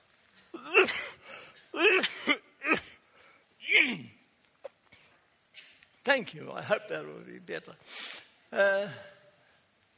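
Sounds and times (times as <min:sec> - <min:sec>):
person clearing throat: 0:00.5 - 0:03.0
person coughing: 0:00.5 - 0:03.0
speech: 0:06.1 - 0:09.2.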